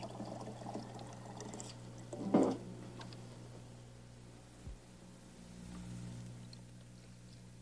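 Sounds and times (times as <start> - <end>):
faint trickling of a recirculating tabletop fountain: 0.0 - 2.2
steady low electrical hum: 0.0 - 7.6.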